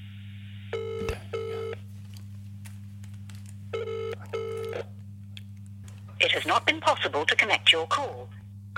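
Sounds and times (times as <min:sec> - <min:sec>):
low hum: 0:00.0 - 0:08.7
telephone ringback tone from an outgoing phone call: 0:00.7 - 0:01.8, 0:03.8 - 0:04.8
person speaking: 0:06.2 - 0:08.7.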